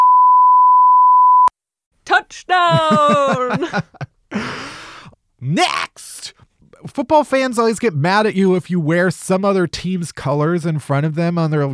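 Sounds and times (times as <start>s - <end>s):
censor bleep tone: 0.0s - 1.5s
speech: 2.3s - 4.5s, 5.4s - 6.1s, 7.0s - 11.7s
laughter: 2.6s - 4.1s.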